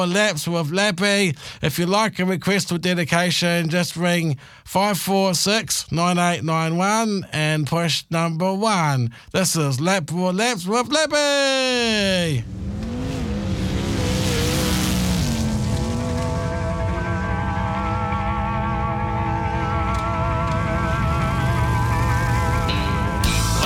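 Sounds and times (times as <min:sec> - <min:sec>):
speech: 0:00.0 - 0:12.8
sprint car engines racing at a sprint car race show: 0:11.8 - 0:23.6.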